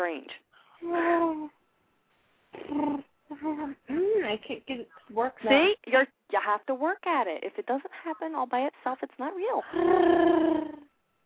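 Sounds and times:
speech: 0.0s - 1.6s, 2.5s - 10.8s
person imitating a cat's purr: 2.6s - 4.2s, 9.7s - 10.9s.

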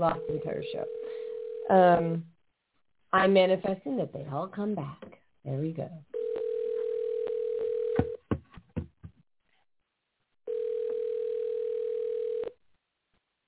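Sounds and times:
phone line ringing tone: 0.0s - 1.8s, 6.2s - 8.2s, 10.5s - 12.6s
speech: 0.0s - 2.4s, 3.1s - 6.2s
soft thumps and clicks: 8.0s - 9.2s.

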